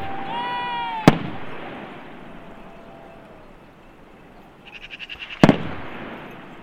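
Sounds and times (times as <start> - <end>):
distant gunshot cracks echoing: 1.0 - 2.4, 5.3 - 6.6.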